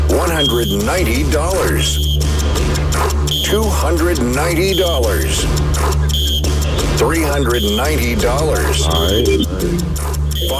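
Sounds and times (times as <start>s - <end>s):
man talking energetically: 0.1s - 2.0s, 3.4s - 5.5s, 7.0s - 10.5s
short high electronic game show buzzer beeps: 0.2s - 1.1s, 3.2s - 3.6s, 6.1s - 6.6s, 7.2s - 8.1s, 8.8s - 10.5s
speech: 0.4s - 6.2s, 7.0s - 10.5s.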